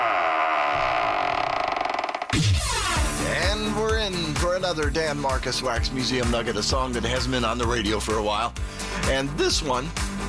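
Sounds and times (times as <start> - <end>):
heavy vault door creaking open: 0.0 - 3.2
speech: 2.3 - 10.1.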